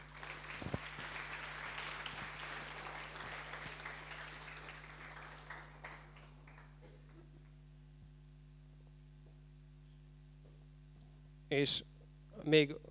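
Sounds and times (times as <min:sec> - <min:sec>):
audience applause at an award ceremony: 0:00.0 - 0:07.3
low electrical hum: 0:00.0 - 0:12.8
speech: 0:11.5 - 0:12.8.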